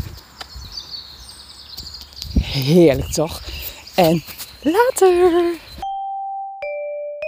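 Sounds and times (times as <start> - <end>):
soft outdoor rustle: 0.0 - 5.8
birds chirping: 0.0 - 5.9
speech: 2.6 - 5.7.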